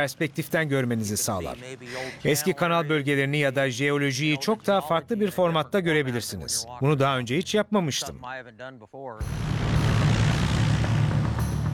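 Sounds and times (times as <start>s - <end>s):
speech: 0.0s - 9.6s
small propeller plane engine droning before takeoff: 9.2s - 11.7s.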